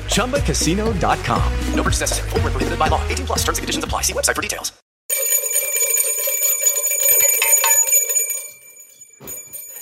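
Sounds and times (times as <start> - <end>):
speech: 0.1 - 4.8
bright metallic bell ringing: 5.1 - 9.8.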